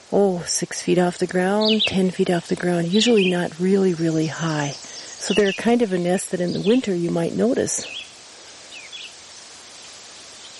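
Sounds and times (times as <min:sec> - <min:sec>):
wind rustling through quaking aspen leaves: 0:00.0 - 0:10.5
speech: 0:00.1 - 0:08.1
faint brief bird chirps: 0:02.8 - 0:10.5.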